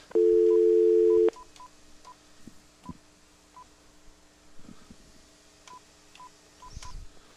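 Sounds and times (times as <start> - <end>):
touch-tone telephone dialing beeps: 0.2 - 1.4.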